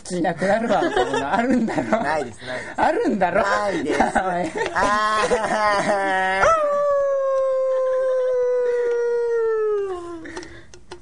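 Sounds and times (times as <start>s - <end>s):
speech: 0.1s - 6.7s
laughter: 0.4s - 2.7s, 3.4s - 10.9s
person imitating a dog howling and yelping: 6.0s - 10.2s.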